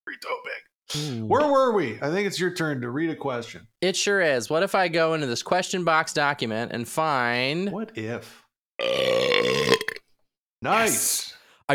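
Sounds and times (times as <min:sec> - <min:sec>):
speech: 0:00.1 - 0:09.0, 0:10.6 - 0:11.7
long loud burp: 0:08.8 - 0:10.1.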